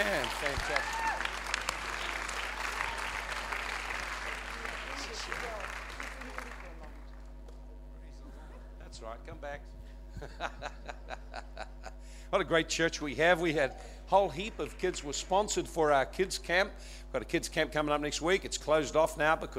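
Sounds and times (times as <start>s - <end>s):
speech: 0.0s - 1.0s, 12.3s - 19.5s
congregation applause: 0.0s - 7.3s, 14.3s - 15.4s
laughter: 10.1s - 12.0s.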